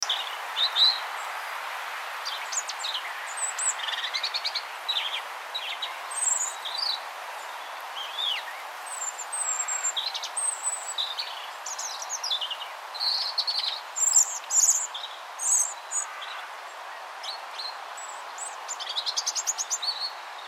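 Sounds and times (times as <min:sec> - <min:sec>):
faint steady background hiss: 0:00.0 - 0:20.4
European robin Erithacus rubecula singing: 0:02.2 - 0:16.4, 0:17.2 - 0:20.4.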